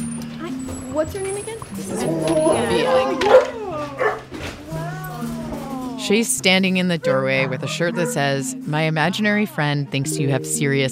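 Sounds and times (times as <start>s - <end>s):
dogs barking and whining at the door of a small two-story house: 0.8s - 6.0s, 6.9s - 8.4s
speech: 1.0s - 3.3s, 6.1s - 10.9s.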